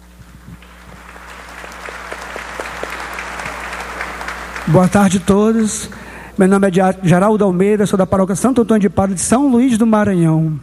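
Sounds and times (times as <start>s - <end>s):
low steady hum: 0.0s - 10.6s
crowd applauding: 0.4s - 6.4s
speech: 4.7s - 10.6s.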